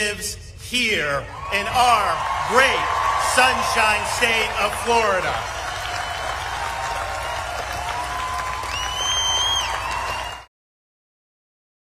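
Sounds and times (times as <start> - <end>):
speech: 0.0 - 5.6
crowd whistles and cheers: 1.3 - 10.5
large crowd applauding: 1.8 - 10.5.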